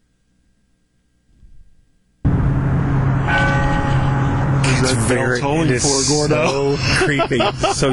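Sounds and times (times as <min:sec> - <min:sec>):
faint low rumble: 0:00.0 - 0:07.8
bell of an old church near the park with the Gateway Arch ringing: 0:02.3 - 0:07.5
speech: 0:04.9 - 0:07.9
laughter: 0:06.1 - 0:07.9.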